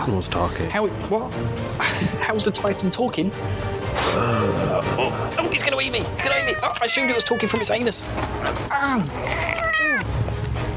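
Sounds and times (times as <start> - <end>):
speech: 0.0 - 9.6
cat meowing loudly: 6.2 - 8.0, 9.0 - 10.1.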